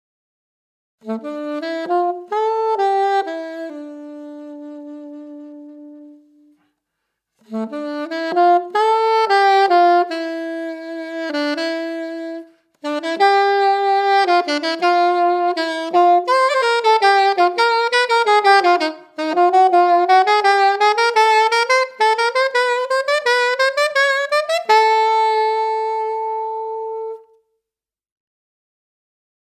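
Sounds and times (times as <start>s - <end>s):
solo modern Selmer AXOS saxophone: 1.0s - 6.8s, 7.4s - 27.6s.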